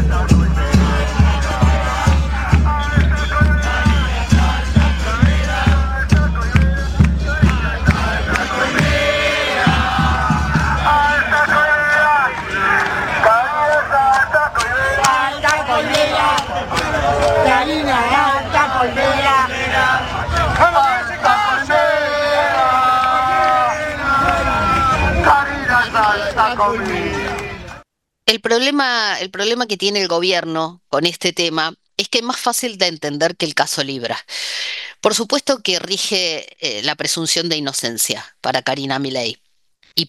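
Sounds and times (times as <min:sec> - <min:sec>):
large crowd singing at a multisectorial rally in Plaza del Congreso: 0:00.0 - 0:27.8
speech: 0:28.6 - 0:39.4.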